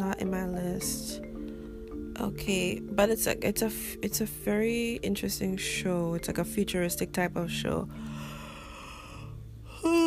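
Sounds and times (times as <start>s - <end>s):
speech: 0.2s - 1.3s, 2.2s - 8.3s
person yawning: 8.8s - 10.0s.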